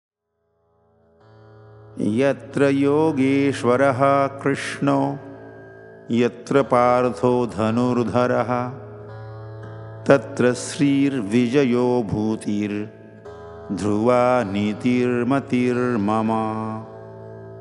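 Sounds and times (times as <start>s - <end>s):
person chanting a tuned Sanskrit shloka: 2.0s - 5.4s, 6.1s - 8.9s, 10.1s - 12.9s, 13.7s - 17.0s.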